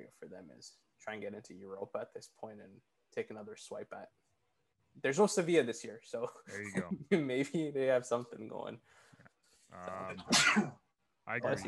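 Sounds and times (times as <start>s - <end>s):
speech: 0.0s - 4.2s, 5.0s - 9.1s, 9.7s - 11.6s
single loud sneeze: 9.9s - 10.8s.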